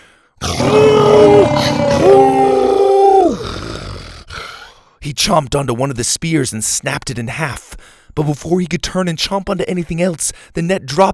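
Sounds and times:
dinosaur roaring with a guttural rumbling growl: 0.4s - 4.4s
speech: 5.3s - 11.1s.

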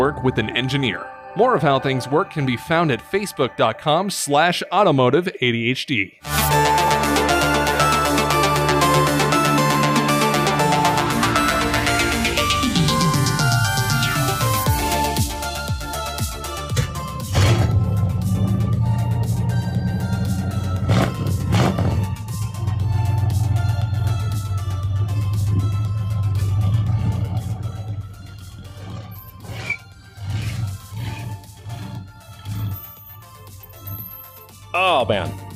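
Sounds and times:
speech: 0.0s - 6.8s
1965 Ford Falcon sedan V8 engine rumbling and revving: 6.3s - 34.4s.

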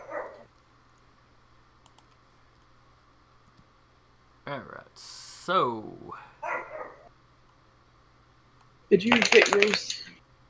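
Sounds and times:
dog yipping and barking: 0.0s - 0.5s, 6.4s - 7.1s
speech: 4.5s - 6.3s, 8.9s - 10.1s.

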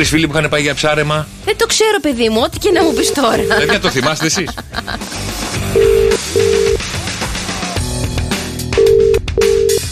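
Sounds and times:
speech: 0.0s - 6.4s
music: 0.0s - 9.8s
laughter: 3.1s - 5.3s
telephone dialing tones as a call is placed: 5.8s - 6.8s, 8.8s - 9.8s.

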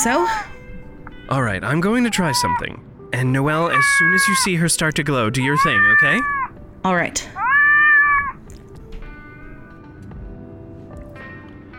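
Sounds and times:
speech: 0.0s - 0.5s, 1.3s - 7.4s
cat meowing: 1.8s - 2.8s, 3.4s - 4.6s, 5.2s - 6.6s, 7.2s - 8.4s.

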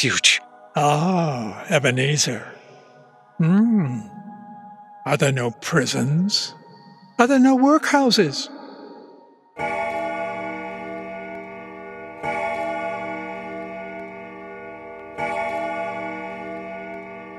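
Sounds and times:
speech: 0.0s - 2.6s, 3.4s - 4.1s, 5.0s - 6.6s, 7.2s - 8.6s
deep clock bell striking twelve: 9.6s - 17.3s.

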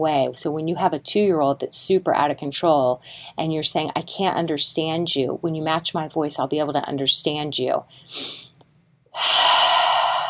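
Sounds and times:
speech: 0.0s - 8.5s, 9.2s - 9.8s
exaggerated deep breath by an adult: 9.1s - 10.2s.

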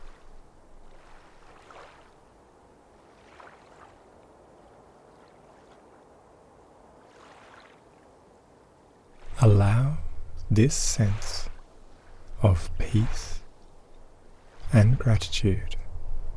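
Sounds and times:
gentle water waves at sunset: 0.0s - 16.3s
low continuous rumble: 9.2s - 16.3s
speech: 9.4s - 9.9s, 10.6s - 11.4s, 12.4s - 13.3s, 14.7s - 15.8s.

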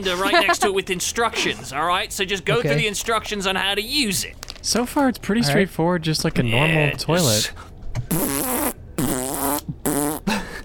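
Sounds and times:
speech: 0.0s - 8.4s
man blowing raspberries imitating farts with his mouth: 8.1s - 10.3s.

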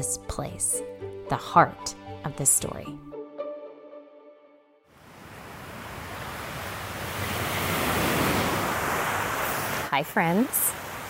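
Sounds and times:
speech: 0.0s - 3.1s, 9.9s - 10.8s
ocean waves washing onto a beach: 4.9s - 11.0s.

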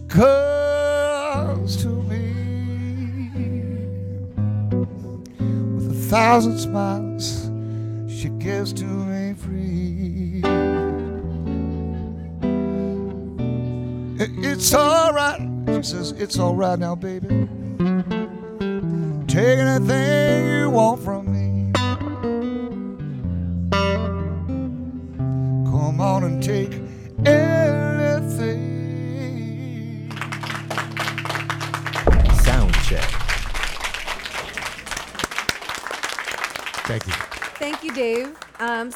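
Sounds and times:
sustained electric guitar chords in a slow rock ballad: 0.0s - 34.4s
speech: 0.1s - 0.5s, 1.6s - 2.0s, 6.1s - 7.5s, 8.2s - 10.7s, 14.3s - 17.6s, 19.4s - 21.2s, 38.3s - 38.9s
crowd applause and cheering: 30.1s - 38.7s.

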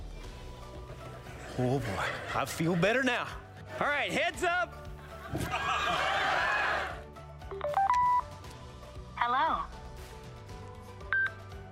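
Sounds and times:
laughter: 1.5s - 3.4s, 4.9s - 7.0s
speech: 1.6s - 6.4s
telephone dialing with stepped electronic tones: 7.5s - 8.3s.

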